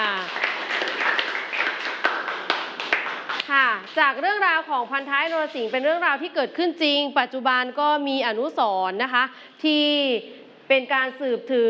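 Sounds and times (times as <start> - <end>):
classroom full of people clapping: 0.0 - 4.0
speech: 3.9 - 11.6.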